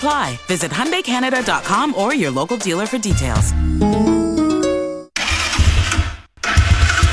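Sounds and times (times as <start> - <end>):
speech: 0.0 - 4.3
ATV engine cranking and sputtering, struggling to start: 5.2 - 7.1.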